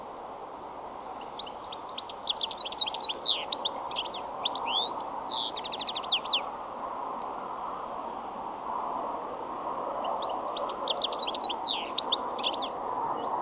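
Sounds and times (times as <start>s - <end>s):
low background noise: 0.0s - 13.4s
European Goldfinch twittering calls: 1.2s - 6.5s, 10.1s - 13.4s.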